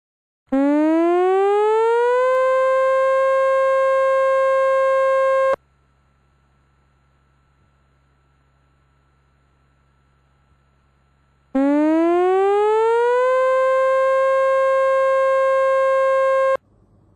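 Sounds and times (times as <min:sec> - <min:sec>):
tsunami warning siren wailing: 0:00.5 - 0:05.6, 0:11.6 - 0:16.6.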